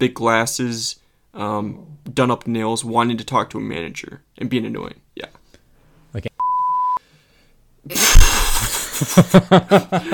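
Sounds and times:
speech: 0.0s - 5.4s, 9.0s - 10.1s
censor bleep tone: 6.4s - 7.0s
wheezing laughter: 8.0s - 10.1s.

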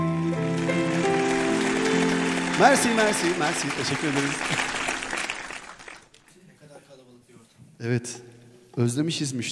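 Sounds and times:
audience applause after a live song performance: 0.1s - 6.2s
speech: 2.6s - 4.8s, 7.8s - 9.5s.

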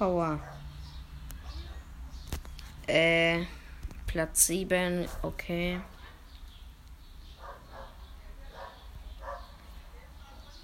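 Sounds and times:
speech: 0.0s - 0.6s, 2.9s - 5.9s
dog barking outside near a balcony: 0.3s - 2.1s, 7.4s - 10.1s.

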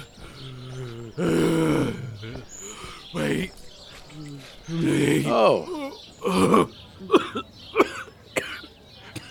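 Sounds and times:
speech: 1.2s - 1.4s, 5.1s - 6.8s
person in a harsh coughing fit: 6.3s - 9.2s.

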